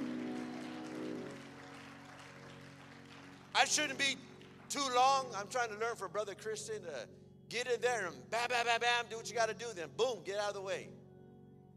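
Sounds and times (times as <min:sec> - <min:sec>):
audience applause: 0:00.0 - 0:05.2
sustained organ-like humming tone: 0:00.0 - 0:11.7
speech: 0:03.6 - 0:11.0.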